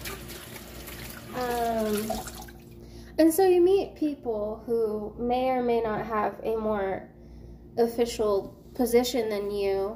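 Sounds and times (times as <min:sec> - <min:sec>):
tap water running while someone washes up: 0:00.0 - 0:02.8
speech: 0:01.4 - 0:02.4, 0:03.2 - 0:07.1, 0:07.8 - 0:09.9.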